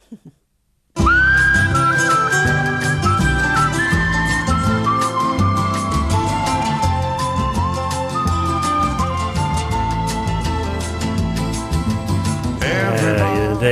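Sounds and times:
skilled human whistling of a melody: 1.0s - 11.4s
full instrumental backing music: 1.0s - 13.7s.

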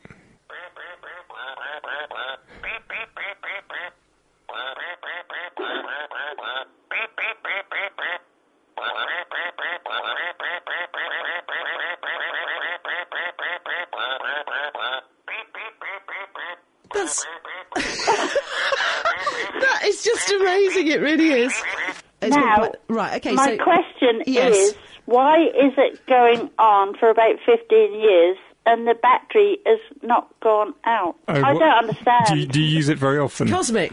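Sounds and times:
battery-powered toy duck quacking electronically: 3.2s - 16.6s, 17.2s - 17.8s, 21.5s - 22.0s
speech: 17.1s - 18.2s, 20.0s - 33.9s
laughter: 17.7s - 22.0s.

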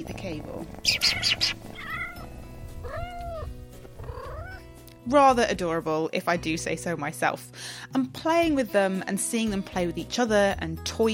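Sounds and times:
speech: 0.0s - 2.0s, 5.0s - 11.1s
pet kitten meowing: 0.7s - 4.6s.

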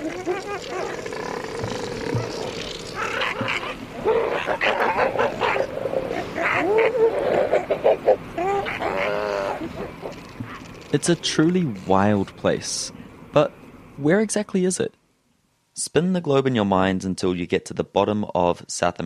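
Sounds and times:
higher whining cries of southern elephant seals: 0.0s - 7.6s
southern elephant seal colony bellowing and groaning at penguins: 0.0s - 10.8s
constant rumble: 0.0s - 14.1s
speech: 0.2s - 1.2s, 10.9s - 15.0s, 15.8s - 19.0s.

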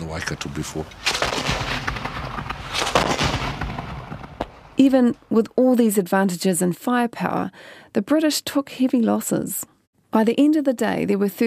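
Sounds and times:
constant rumbling roar: 0.0s - 5.3s
speech: 0.1s - 1.7s, 4.8s - 11.4s
cannons firing from steamers on the Waikato River shelling a pa: 0.4s - 5.0s.

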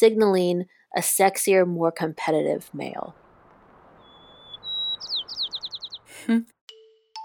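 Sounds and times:
speech: 0.0s - 3.2s, 6.3s - 6.5s
bird singing whistled note and sweeping trilled notes: 2.9s - 6.2s.

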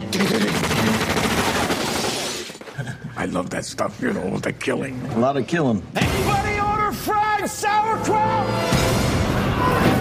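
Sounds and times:
dense gunfire from a film shootout: 0.1s - 2.6s
speech: 0.2s - 0.6s, 3.2s - 9.0s.

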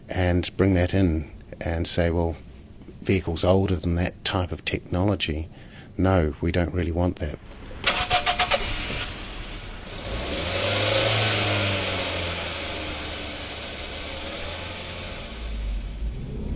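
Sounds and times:
speech: 0.1s - 7.6s
1991 Toyota Corolla engine starting and idling: 7.4s - 16.5s.

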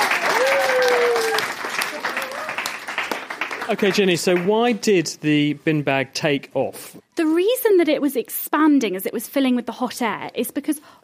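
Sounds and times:
audience clapping after a science demonstration: 0.0s - 5.0s
speech: 3.7s - 11.0s.

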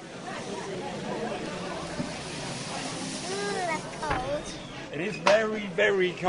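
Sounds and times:
faint murmuring voices of a crowd: 0.0s - 5.7s
liquid nitrogen boiling off during a science demonstration: 0.6s - 4.8s
speech: 5.0s - 6.2s.

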